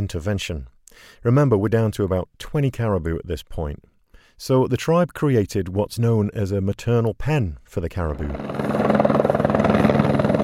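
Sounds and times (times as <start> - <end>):
speech: 0.0 - 8.7
helicopter flying: 8.1 - 10.4.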